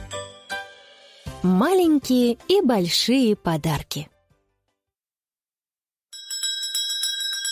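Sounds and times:
speech: 0:01.4 - 0:04.1
small bell rung by hand: 0:06.1 - 0:07.4.

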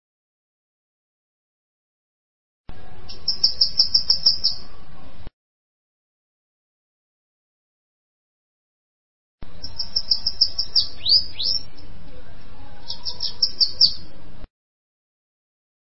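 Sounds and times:
bananaquit singing: 0:02.7 - 0:05.0, 0:09.4 - 0:14.2.

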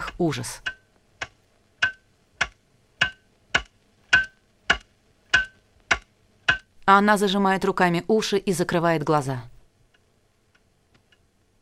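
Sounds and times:
cuckoo clock ticking: 0:00.0 - 0:06.6
speech: 0:00.2 - 0:00.7, 0:06.9 - 0:09.5.

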